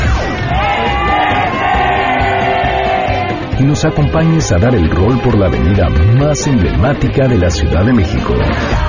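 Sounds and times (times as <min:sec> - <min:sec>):
large crowd shouting together in a sustained collective yell: 0:00.0 - 0:03.6
speech: 0:03.6 - 0:08.8.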